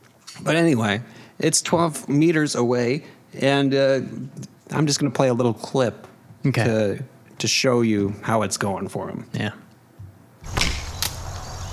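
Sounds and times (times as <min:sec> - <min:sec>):
steady outdoor noise: 0:00.0 - 0:11.7
speech: 0:00.4 - 0:09.6
arrow loosed from a bow at stacked hay bales: 0:10.4 - 0:11.7.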